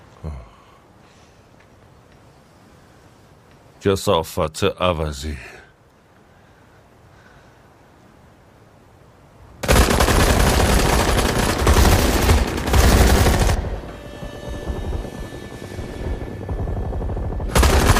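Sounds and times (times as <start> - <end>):
speech: 3.8 - 5.6
rapid gunfire: 9.6 - 13.8, 16.5 - 17.9
steady mechanical hum: 9.6 - 17.9.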